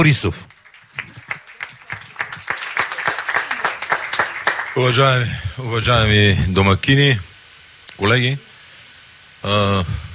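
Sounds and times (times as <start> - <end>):
speech: 0.0 - 0.6, 4.8 - 7.3, 8.0 - 8.5, 9.4 - 10.0
audience applause: 0.0 - 5.4.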